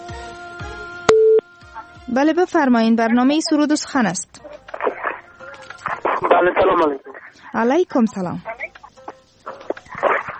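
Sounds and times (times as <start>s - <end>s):
telephone busy signal beep after a call fails to connect: 1.1s - 1.4s
speech: 2.1s - 4.3s, 6.4s - 8.5s.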